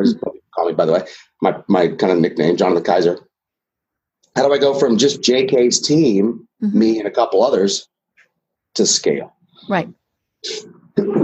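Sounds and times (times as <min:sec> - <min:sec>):
speech: 0:00.0 - 0:03.3, 0:04.4 - 0:07.9, 0:08.7 - 0:11.2
sneeze: 0:10.5 - 0:11.2.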